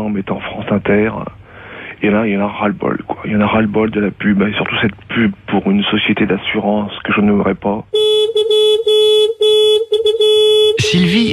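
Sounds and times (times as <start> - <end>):
speech: 0.1 - 1.4, 2.0 - 8.0, 10.8 - 11.3
car horn honking in long blasts: 7.9 - 11.3.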